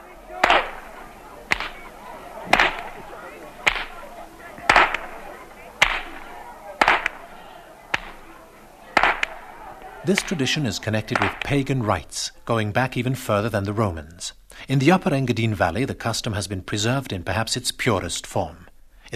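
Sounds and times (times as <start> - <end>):
laughter: 0.0 - 13.9
low street noise: 0.0 - 18.0
whips cracked by older boys in village streets: 0.4 - 4.0, 4.6 - 5.2, 5.8 - 7.2, 7.9 - 8.3, 9.0 - 10.5, 11.1 - 11.6
speech: 10.1 - 19.1.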